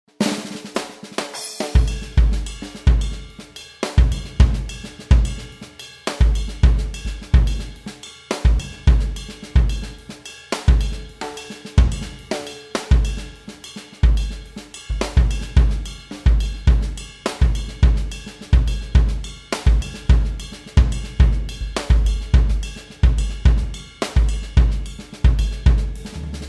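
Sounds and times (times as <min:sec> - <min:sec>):
songo rhythm: 0:00.2 - 0:26.4.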